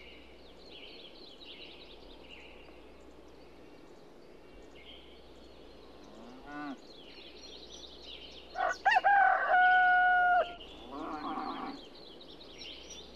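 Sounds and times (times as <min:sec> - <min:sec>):
small birds chirping faintly in a village: 0:00.0 - 0:09.0, 0:10.4 - 0:13.1
rooster crowing in a village: 0:08.6 - 0:10.6.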